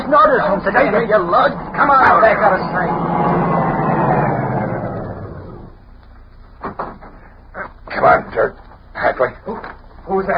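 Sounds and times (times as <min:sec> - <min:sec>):
speech: 0:00.1 - 0:03.7, 0:08.0 - 0:08.6, 0:09.2 - 0:10.3
car engine roaring: 0:00.8 - 0:05.8.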